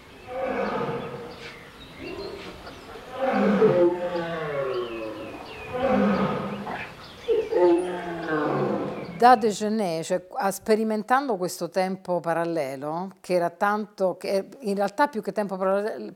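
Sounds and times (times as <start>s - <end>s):
lions and tigers roaring in zoo cages: 0.2s - 9.2s
speech: 9.2s - 16.1s.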